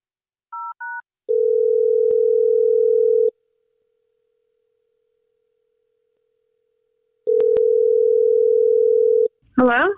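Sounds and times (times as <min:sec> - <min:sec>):
phone ringback tone: 0:01.3 - 0:03.3, 0:07.3 - 0:09.3.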